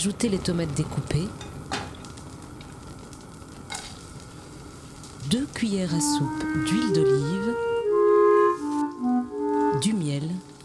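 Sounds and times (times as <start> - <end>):
speech: 0.0 - 1.8, 5.3 - 7.8
onions sizzling as they brown in a small saucepan: 0.0 - 10.6.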